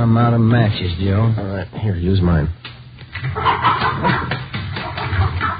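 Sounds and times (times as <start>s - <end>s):
speech: 0.1s - 4.3s
chicken clucking and squawking: 3.3s - 5.5s.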